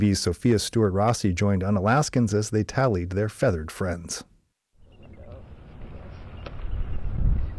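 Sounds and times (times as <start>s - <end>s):
speech: 0.0s - 4.3s
wind blowing outdoors on a cold winter day on Mackinac Island: 4.8s - 7.5s.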